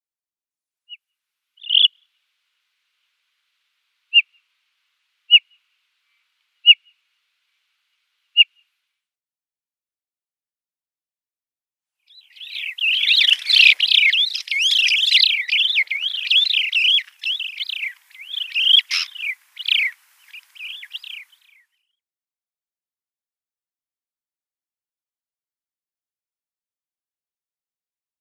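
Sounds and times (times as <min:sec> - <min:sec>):
Desert Lark calling: 0:01.6 - 0:02.1, 0:04.1 - 0:04.4, 0:05.3 - 0:07.0, 0:12.1 - 0:21.6.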